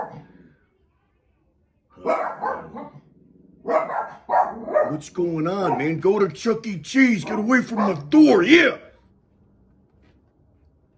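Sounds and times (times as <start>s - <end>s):
dogs barking at a noise outside: 0.0s - 0.4s, 2.0s - 8.6s
speech: 4.9s - 8.8s.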